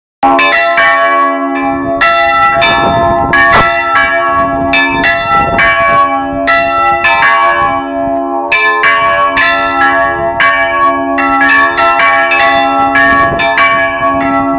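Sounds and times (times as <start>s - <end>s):
bells ringing: 0.2s - 14.5s.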